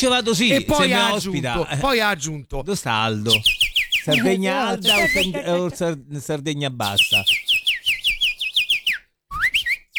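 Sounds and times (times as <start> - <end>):
speech: 0.0 - 7.4
laughter: 0.5 - 1.5, 4.1 - 6.0
person whistling an imitation of goldfinch song: 3.3 - 5.4, 7.0 - 9.9.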